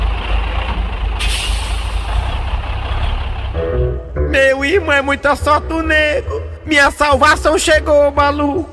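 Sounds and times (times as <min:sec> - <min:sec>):
heavy truck rumbling: 0:00.0 - 0:08.7
truck air brakes hissing: 0:01.2 - 0:02.5
speech: 0:04.6 - 0:08.7.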